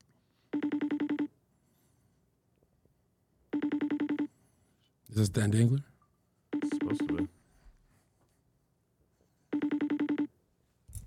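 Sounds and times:
phone ringing with a quick electronic trill: 0.5 - 1.3, 3.5 - 4.3, 6.5 - 7.4, 9.5 - 10.3
speech: 5.2 - 5.9.

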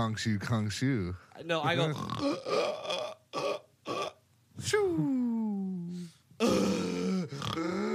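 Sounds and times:
speech: 0.0 - 3.0, 4.6 - 5.2
person's voice imitating sleep apnea snoring and gasping: 1.9 - 4.2, 6.4 - 7.9.

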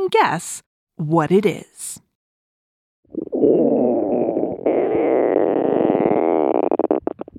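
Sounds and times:
speech: 0.1 - 2.0
loud stomach rumble gurgling: 3.2 - 7.3.

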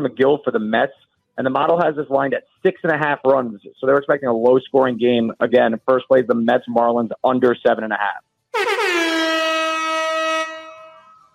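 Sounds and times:
speech: 0.0 - 9.3
air horn blast: 8.6 - 11.3.

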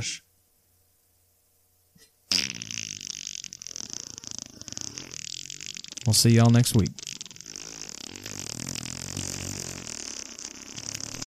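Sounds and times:
speech: 0.0 - 0.3, 6.0 - 7.0
long drawn-out fart: 2.3 - 11.2.

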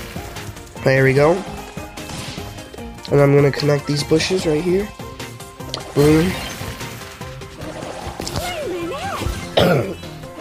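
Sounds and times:
speech: 0.8 - 1.6, 3.1 - 5.0, 6.0 - 6.5, 9.6 - 10.0
person coughing: 9.6 - 10.0.

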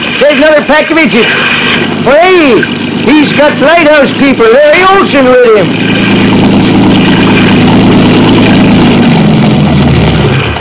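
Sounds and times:
motor launch engine droning: 0.0 - 10.6
speech: 0.2 - 6.4.

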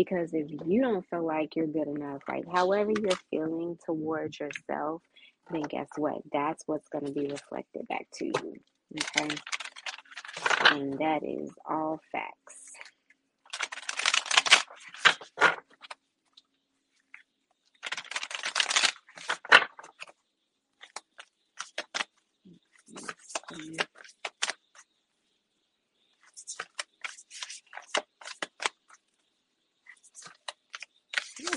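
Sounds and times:
speech: 0.0 - 9.6, 10.7 - 12.6
deck of stiff cards being shuffled: 8.3 - 10.9, 13.5 - 16.0, 17.8 - 20.1, 20.8 - 22.1, 22.8 - 24.7, 26.3 - 28.9, 29.9 - 31.5.

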